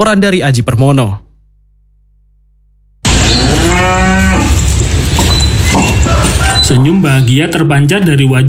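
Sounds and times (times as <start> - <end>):
speech: 0.0 - 1.2, 6.6 - 8.4
outdoor noise: 3.0 - 8.4
cow mooing: 3.2 - 4.7.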